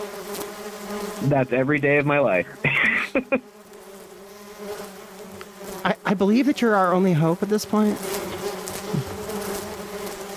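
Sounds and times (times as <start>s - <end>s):
dense swarm of thousands of bees on a person buzzing: 0.0s - 10.3s
speech: 1.2s - 3.5s, 5.8s - 8.1s
laughter: 1.6s - 3.4s.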